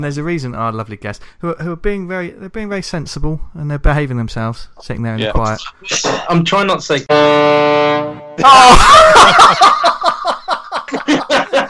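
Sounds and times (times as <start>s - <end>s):
speech: 0.0s - 9.9s
low foghorn blast: 7.1s - 8.4s
rhythmic bursts of laughter: 8.4s - 11.6s.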